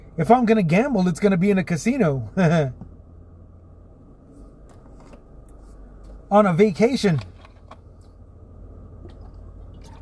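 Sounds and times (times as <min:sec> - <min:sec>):
speech: 0:00.2 - 0:02.9, 0:06.3 - 0:07.3
water sloshing: 0:09.0 - 0:10.0.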